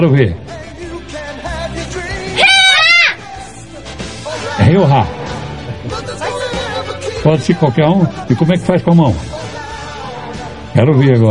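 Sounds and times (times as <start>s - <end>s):
speech: 0.0s - 0.6s, 4.6s - 5.2s, 7.2s - 9.4s, 10.8s - 11.2s
loud strained karate battle shout: 2.4s - 3.2s.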